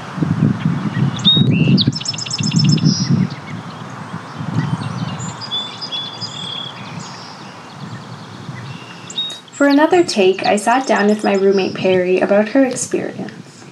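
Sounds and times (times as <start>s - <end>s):
springtime birds chirping and trilling: 0.0s - 13.6s
speech: 9.6s - 13.4s.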